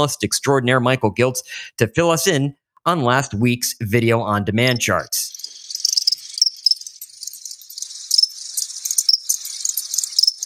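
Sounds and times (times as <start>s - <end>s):
speech: 0.0s - 5.4s
crickets chirping: 4.7s - 10.4s.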